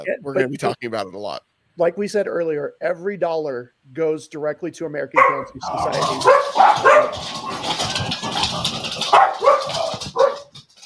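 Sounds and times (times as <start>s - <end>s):
speech: 0.0s - 7.7s
several dogs barking excitedly: 5.2s - 10.8s.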